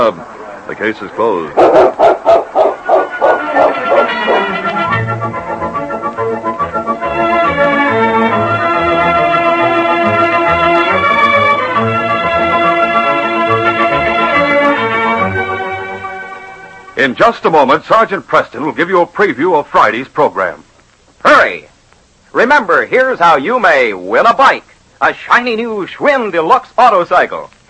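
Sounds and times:
speech: 0:00.0 - 0:02.1, 0:17.0 - 0:20.6, 0:22.4 - 0:27.6
dog barking: 0:01.6 - 0:04.5
orchestral music: 0:02.7 - 0:17.0.

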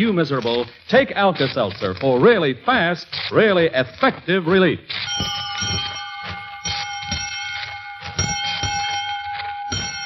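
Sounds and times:
speech: 0:00.0 - 0:05.8
school bell ringing with metallic clatter: 0:05.0 - 0:10.0.

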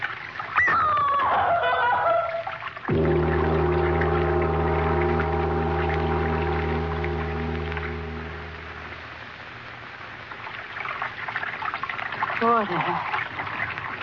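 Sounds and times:
running water: 0:00.0 - 0:09.3, 0:10.2 - 0:14.0
loud low humming drone: 0:02.9 - 0:09.2.

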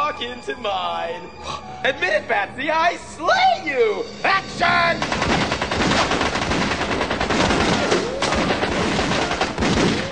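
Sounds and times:
speech: 0:00.2 - 0:05.4
rapid gunfire from guns loaded with blanks on a film set: 0:05.0 - 0:10.1.

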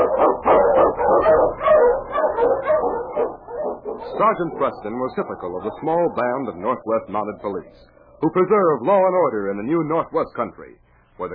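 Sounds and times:
pack of husky sled dogs barking and yipping: 0:00.0 - 0:07.8
speech: 0:04.2 - 0:11.3.

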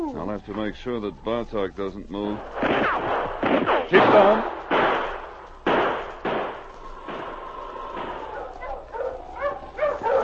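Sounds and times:
speech: 0:00.1 - 0:04.9
drawn-out bullet whine: 0:02.2 - 0:09.0
distant gunshots in a rocky mountain pass: 0:02.4 - 0:09.3.

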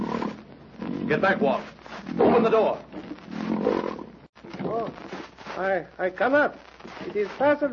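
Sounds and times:
lion roaring: 0:00.0 - 0:04.9
speech: 0:01.1 - 0:03.0, 0:05.6 - 0:07.7.

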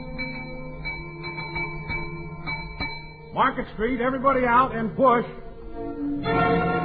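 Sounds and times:
cable car trolley bell clanging: 0:00.0 - 0:03.7
speech: 0:03.4 - 0:06.7.

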